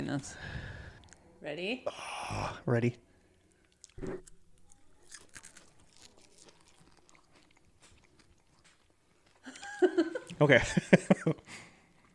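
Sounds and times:
speech: 0.1s - 0.7s, 1.4s - 3.1s, 4.0s - 4.3s, 9.8s - 11.6s
chewing and crackling of a crispy snack: 3.2s - 10.4s
person biting into a crispy flavored snack: 3.6s - 9.4s.

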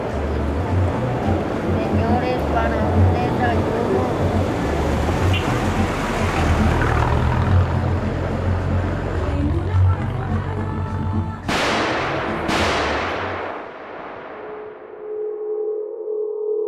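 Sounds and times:
rumbling city background: 0.0s - 16.6s
gunshots: 11.5s - 14.9s.

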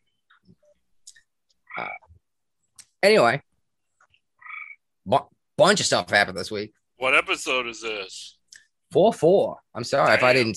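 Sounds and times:
tree frogs croaking by wetlands next to a home: 1.7s - 2.1s, 4.4s - 4.9s
speech: 1.8s - 2.0s, 3.0s - 3.5s, 5.1s - 10.5s.

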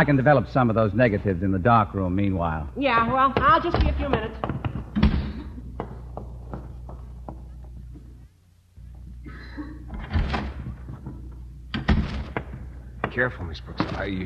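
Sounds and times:
speech: 0.0s - 4.6s, 13.2s - 14.2s
low hum: 0.0s - 14.2s
soft knocks and bumps: 2.8s - 9.2s, 9.9s - 14.2s
door slamming shut: 9.9s - 14.2s.

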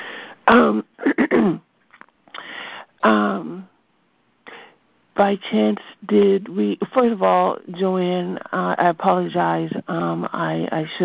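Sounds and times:
person clearing throat during a morning group call: 0.5s - 1.6s
speech: 0.5s - 1.7s, 3.0s - 3.7s, 5.2s - 11.0s.

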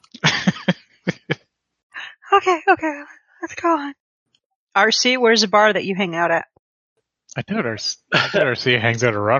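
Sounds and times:
harsh painful coughing: 0.2s - 1.4s, 7.5s - 8.8s
laughter: 0.2s - 1.4s, 7.4s - 9.3s
speech: 2.4s - 4.0s, 4.8s - 6.5s, 7.3s - 9.3s.

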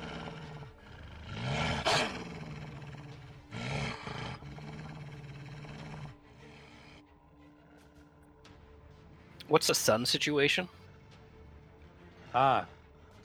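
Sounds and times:
wolf in a video game fight snarling and growling: 0.0s - 7.2s
speech: 9.5s - 10.8s, 12.4s - 12.8s.

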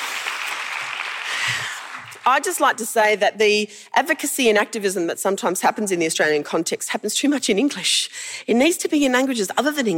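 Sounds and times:
crowd applauding: 0.0s - 2.3s
speech: 1.5s - 9.9s.

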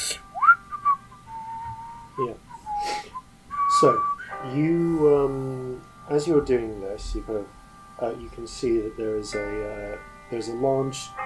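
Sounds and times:
person whistling tunelessly: 0.0s - 5.2s
speech: 2.2s - 2.5s, 3.8s - 11.2s.

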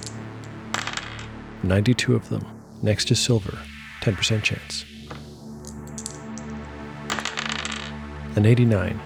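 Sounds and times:
dice rattling and clattering across a hard surface: 0.0s - 1.3s, 5.1s - 7.9s
speech: 1.6s - 4.9s, 8.4s - 9.0s.

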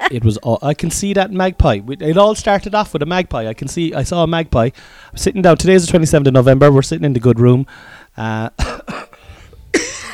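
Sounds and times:
speech: 0.0s - 9.0s
person coughing chesty coughs: 8.6s - 10.1s.

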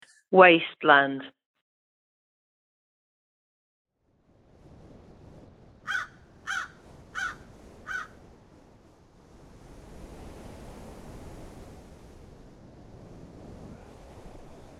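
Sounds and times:
speech: 0.3s - 1.4s
wind: 4.0s - 14.7s
surf: 4.5s - 14.7s
seagulls calling: 5.9s - 8.1s.

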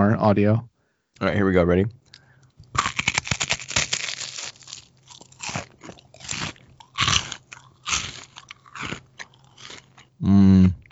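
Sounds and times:
speech: 0.1s - 2.0s
crisp chocolate wafer being chewed: 2.7s - 10.1s.

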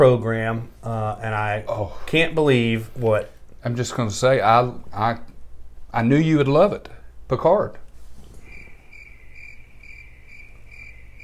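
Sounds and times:
speech: 0.0s - 5.3s, 5.9s - 7.8s
faint low hum: 0.0s - 11.2s
crickets chirping in a high-pitched trill: 8.4s - 11.2s.

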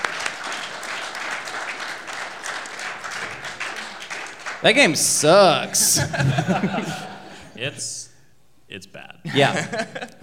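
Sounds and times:
audience applauding at a live show: 0.0s - 5.8s
speech: 4.6s - 8.1s, 8.7s - 10.2s
laughter: 5.6s - 7.5s, 9.2s - 10.2s.

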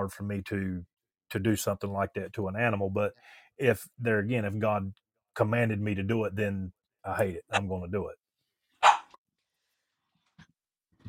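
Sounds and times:
speech: 0.0s - 8.2s
dog barking: 8.8s - 9.2s.

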